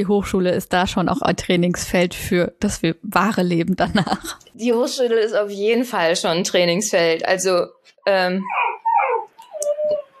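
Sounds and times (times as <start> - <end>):
speech: 0.0 - 8.8
dog yipping and whimpering, wanting to go outside: 8.4 - 10.1
dog barking, wanting to go outside: 8.5 - 9.3.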